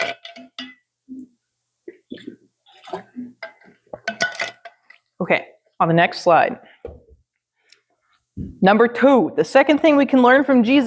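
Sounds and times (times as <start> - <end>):
glass clinking being lifted and set down: 0.0 - 0.9, 2.8 - 4.9
person sipping and gulping water: 1.1 - 4.0
speech: 5.3 - 6.7, 8.6 - 10.8.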